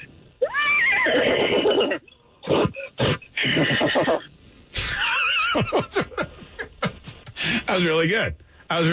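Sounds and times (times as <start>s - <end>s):
person imitating a horse whinny: 0.4s - 4.2s
laughter: 4.8s - 7.7s
speech: 7.8s - 8.9s.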